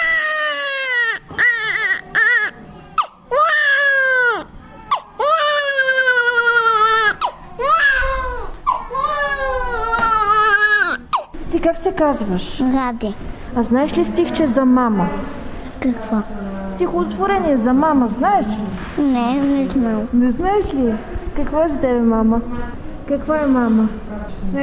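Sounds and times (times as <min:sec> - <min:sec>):
baby wailing loudly: 0:00.0 - 0:11.4
speech: 0:11.8 - 0:24.6.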